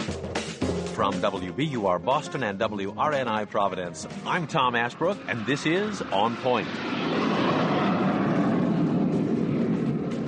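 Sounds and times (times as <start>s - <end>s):
speech: 1.0s - 7.0s
rocket plane rocket motor roaring as it rises over the Mojave Desert in California: 4.5s - 10.2s.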